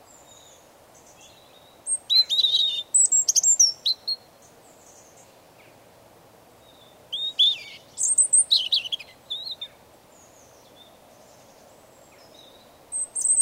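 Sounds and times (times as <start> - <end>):
European robin singing: 0.0 - 5.8, 6.6 - 13.3
soft low hiss: 0.0 - 13.3.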